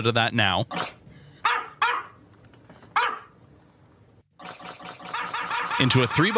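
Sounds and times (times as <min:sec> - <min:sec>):
speech: 0:00.0 - 0:01.0, 0:05.8 - 0:06.3
dog barking: 0:01.4 - 0:02.2, 0:03.0 - 0:03.3.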